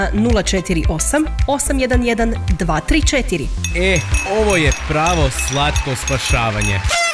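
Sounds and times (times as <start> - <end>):
speech: 0.0 - 7.0
tonal chime: 3.6 - 6.9.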